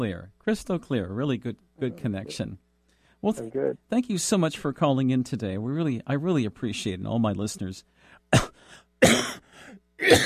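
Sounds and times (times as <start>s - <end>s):
speech: 0.0s - 9.3s, 10.0s - 10.2s
harsh coughs from someone recovering from an illness: 8.3s - 10.2s.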